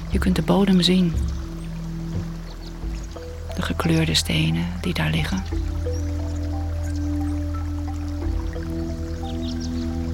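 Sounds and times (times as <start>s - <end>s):
bright water droplets: 0.0s - 10.1s
loud sustained low humming drone: 0.0s - 10.1s
small clear stream trickling and dripping: 0.0s - 10.1s
speech: 0.1s - 1.4s, 3.6s - 5.9s.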